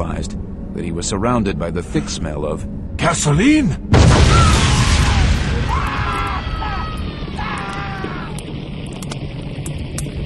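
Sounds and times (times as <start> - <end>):
speech: 0.0 - 4.7
explosion: 3.9 - 6.6
roaring flames: 3.9 - 10.2.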